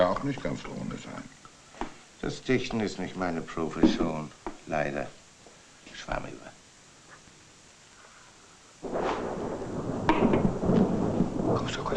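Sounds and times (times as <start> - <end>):
speech: 0.2 - 1.4, 2.2 - 5.2, 5.9 - 6.6
thunder rumbling: 8.8 - 11.9.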